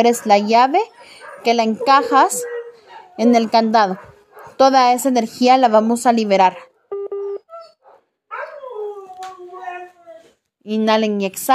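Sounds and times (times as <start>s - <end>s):
speech: 0.0s - 2.6s, 3.2s - 6.7s, 10.6s - 11.5s
dogs whining and yelping: 0.0s - 4.6s, 6.5s - 10.4s
dogs barking: 0.0s - 4.7s, 6.5s - 9.0s
dogs howling: 0.1s - 4.6s, 7.4s - 10.3s.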